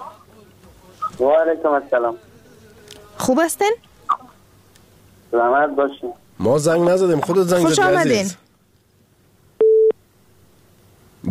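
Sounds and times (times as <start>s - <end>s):
speech: 1.2s - 2.3s, 3.2s - 3.9s, 5.3s - 8.4s
telephone busy tone after a dropped call: 9.6s - 10.0s.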